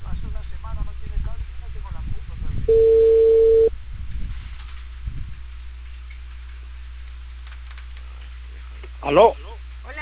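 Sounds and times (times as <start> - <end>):
faint low rumbling on the telephone line: 0.0 - 10.0
telephone ringback tone while an outgoing call is placed: 2.7 - 3.7
speech: 9.1 - 9.4.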